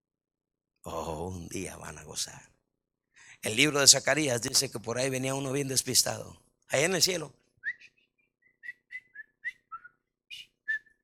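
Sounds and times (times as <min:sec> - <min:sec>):
speech: 0:00.8 - 0:02.6, 0:03.4 - 0:07.4
person whistling a short melodic tune: 0:07.6 - 0:11.0.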